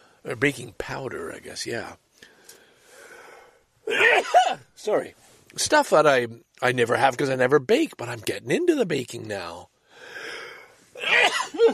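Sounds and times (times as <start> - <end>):
speech: 0.2 - 2.3, 3.9 - 10.2, 11.0 - 11.7
sneeze with mic held away: 3.9 - 4.7, 11.0 - 11.7.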